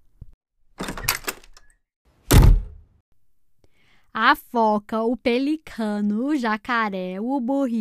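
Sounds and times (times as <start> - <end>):
door swinging shut with a loud solid thump: 0.8 - 1.5, 2.3 - 2.8
door opening with latch and hinges rattling: 0.8 - 1.7
speech: 4.2 - 7.8.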